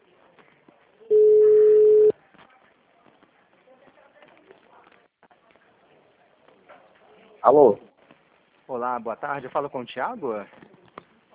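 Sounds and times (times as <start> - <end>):
telephone ringing tone as a call is placed: 1.1 - 2.1
speech: 7.4 - 7.9, 8.8 - 10.7.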